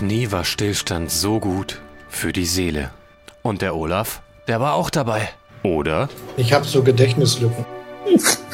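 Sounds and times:
speech: 0.0 - 8.4
single sharp sneeze: 8.0 - 8.5.

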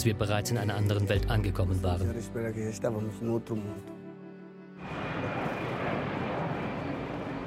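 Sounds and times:
speech: 0.0 - 4.0
airplane on landing approach roaring: 4.8 - 7.4.

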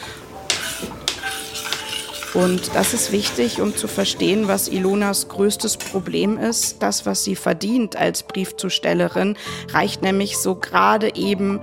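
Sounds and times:
metal pot clattering in a kitchen while cooking porridge: 0.4 - 7.1
speech: 2.4 - 11.6.

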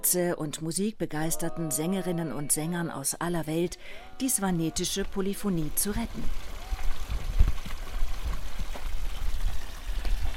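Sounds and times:
speech: 0.0 - 6.5
water splashing from an old stone fountain in a village square in Lakushti: 4.8 - 10.3.

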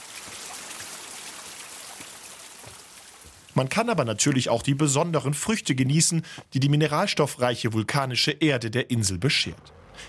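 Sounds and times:
rushing waterfall: 0.0 - 5.2
speech: 3.6 - 10.0.

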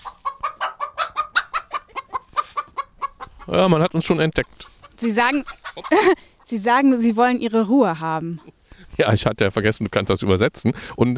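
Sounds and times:
chickens clucking in a henhouse: 0.0 - 6.8
speech: 3.5 - 11.1.

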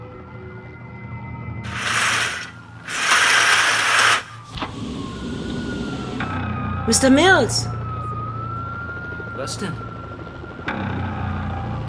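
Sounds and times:
emergency sirens wailing: 0.0 - 11.8
low street rumble: 0.0 - 11.8
loud rushing bursts of noise: 1.7 - 5.4
speech: 6.9 - 7.8, 9.4 - 9.9.

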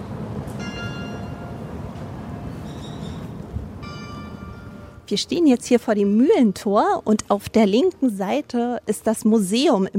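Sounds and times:
outdoor noise: 0.0 - 9.9
town hall carillon chiming: 0.6 - 2.6, 3.8 - 5.1
speech: 5.1 - 9.9.

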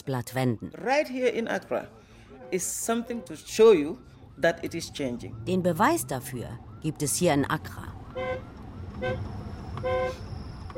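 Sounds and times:
rumble of dense city traffic: 0.0 - 10.7
speech: 0.0 - 10.7
police motorcycle siren blasts in Accra: 2.9 - 10.7.

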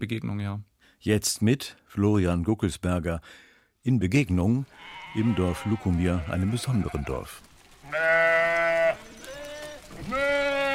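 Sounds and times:
speech: 0.0 - 8.3
sheep bleating: 4.7 - 10.7.

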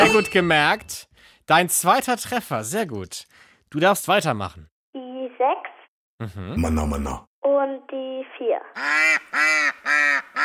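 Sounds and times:
speech: 0.1 - 4.7, 5.3 - 10.4
duck quacking loud and nasal: 8.8 - 10.4.

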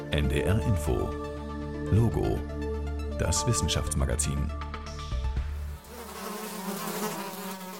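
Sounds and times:
speech: 0.2 - 1.3, 1.9 - 2.5, 3.2 - 4.7
insects buzzing and humming: 5.5 - 7.7.

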